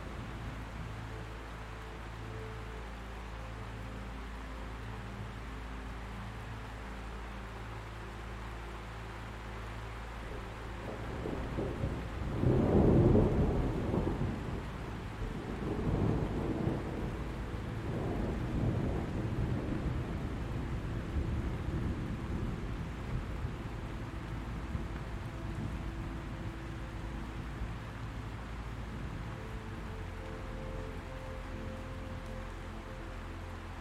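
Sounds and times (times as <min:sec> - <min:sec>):
faint rain-like hiss: 0:00.0 - 0:33.7
soft low sustained tones: 0:00.0 - 0:33.7
low roll of thunder: 0:10.8 - 0:32.5.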